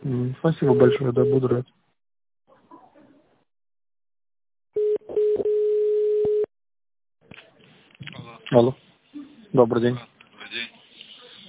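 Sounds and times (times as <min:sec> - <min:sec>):
speech: 0:00.3 - 0:01.8, 0:08.5 - 0:08.8, 0:09.5 - 0:10.1
telephone line tone while a call is transferred: 0:04.8 - 0:06.5.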